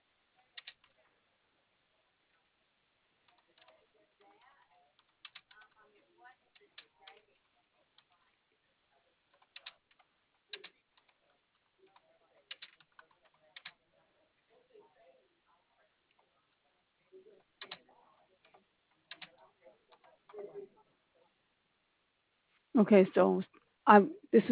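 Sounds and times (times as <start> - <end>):
quiet typing on a computer keyboard: 0.5 - 1.0, 3.3 - 5.8, 6.5 - 8.2, 9.3 - 13.8, 17.6 - 20.4
speech: 22.8 - 24.5.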